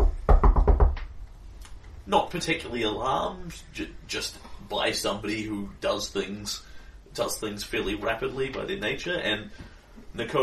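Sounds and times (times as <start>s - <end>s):
sharp knocks on the door of a home: 0.0s - 1.1s
speech: 2.1s - 10.4s.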